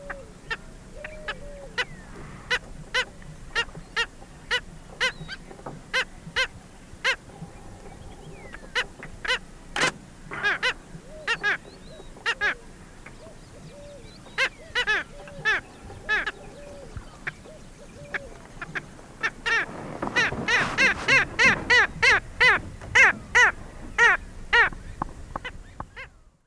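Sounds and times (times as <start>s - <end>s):
black skimmers giving nasal barking calls in the eastern lowlands of South America: 0.0s - 26.4s.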